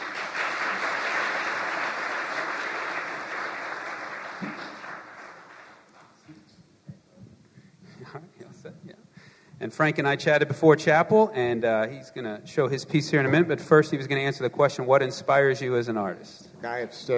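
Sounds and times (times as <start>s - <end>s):
audience applause welcoming an artist at a church chapel service: 0.0s - 6.2s
speech: 9.6s - 17.1s.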